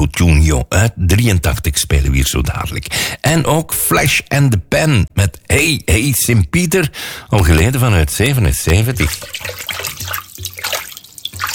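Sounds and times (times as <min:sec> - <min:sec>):
speech: 0:00.1 - 0:10.2
hot water pouring from a tap into a filling bath: 0:08.9 - 0:11.5.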